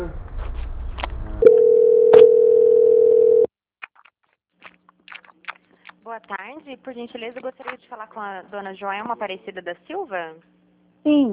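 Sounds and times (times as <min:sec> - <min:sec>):
telephone tone after pressing asterisk on phone keypad: 0:01.4 - 0:03.5
speech: 0:06.3 - 0:11.3.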